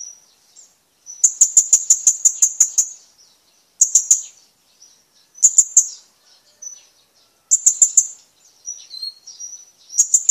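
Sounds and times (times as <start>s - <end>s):
blue-crowned hanging parrot shrill high ticking calls: 0.0s - 3.1s, 3.8s - 4.4s, 5.4s - 6.1s, 7.5s - 10.3s.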